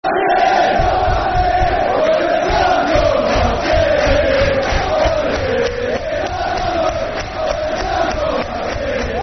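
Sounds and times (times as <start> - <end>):
football crowd chanting: 0.0 - 9.2.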